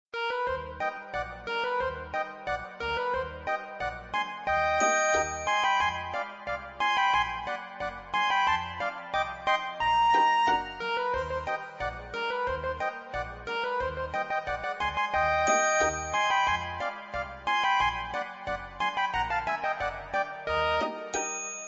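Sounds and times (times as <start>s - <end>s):
polka music: 0.2s - 21.3s.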